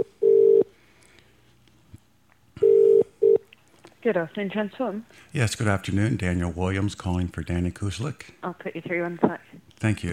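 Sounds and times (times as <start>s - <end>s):
telephone ringback tone on an outgoing call to Great Britain: 0.0s - 0.7s, 2.6s - 3.4s
speech: 4.0s - 10.1s.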